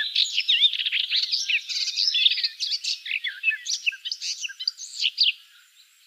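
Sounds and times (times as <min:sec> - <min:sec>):
garden warbler song of rapid warbling mellow chirps and slurs: 0:00.0 - 0:06.0.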